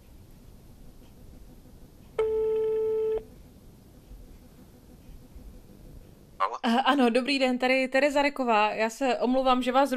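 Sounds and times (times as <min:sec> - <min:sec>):
ringback tone during an outgoing phone call: 0:02.2 - 0:03.3
speech: 0:06.6 - 0:09.9.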